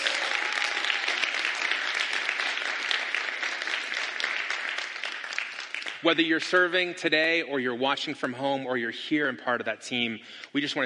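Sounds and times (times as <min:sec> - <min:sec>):
audience applauding: 0:00.0 - 0:06.2
speech: 0:06.0 - 0:10.8.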